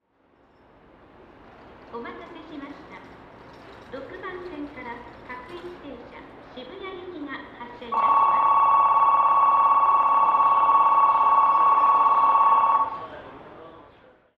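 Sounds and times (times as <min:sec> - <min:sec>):
station bell: 0:07.9 - 0:13.2.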